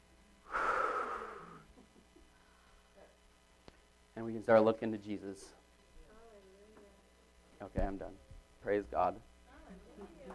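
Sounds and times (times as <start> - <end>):
deep breath: 0.4 - 1.7
speech: 4.2 - 5.6, 7.6 - 10.3.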